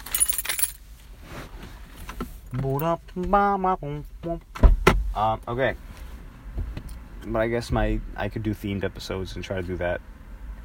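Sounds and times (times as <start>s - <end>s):
keys jingling: 0.0s - 0.8s
soft rustling: 0.2s - 2.8s
speech: 2.5s - 5.9s, 7.2s - 10.1s.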